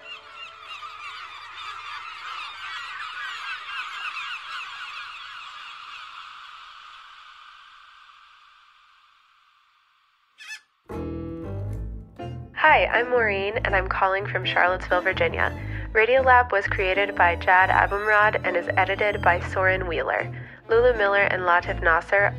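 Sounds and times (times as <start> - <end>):
dense flock of seagulls squawking: 0.0 - 7.4, 10.4 - 10.7, 16.8 - 22.3
speech: 12.8 - 22.3.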